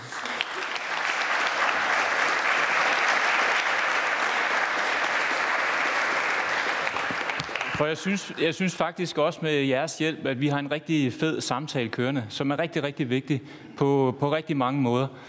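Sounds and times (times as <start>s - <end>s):
audience applauding a panel: 0.0s - 8.3s
speech: 7.8s - 15.2s.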